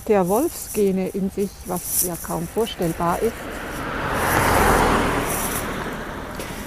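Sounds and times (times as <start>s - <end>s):
speech: 0.1s - 3.6s
car driving past with road noise: 2.9s - 6.6s.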